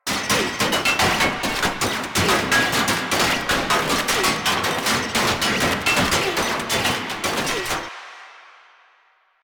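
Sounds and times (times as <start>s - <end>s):
parrying impact: 0.1s - 8.2s.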